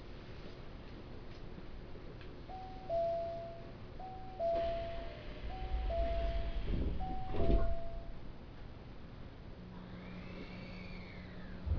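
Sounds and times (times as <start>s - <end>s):
low train rumble: 1.6s - 11.7s
two-note train door warning chime: 2.5s - 8.2s
train sliding doors closing with a whoosh and thud: 4.4s - 8.2s, 11.3s - 11.7s.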